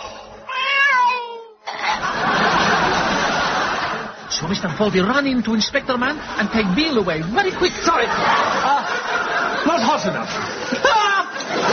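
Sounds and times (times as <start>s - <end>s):
very ill cat meowing in a backyard: 0.5s - 1.6s
laughter: 1.7s - 11.7s
speech: 4.5s - 8.8s, 9.6s - 11.0s.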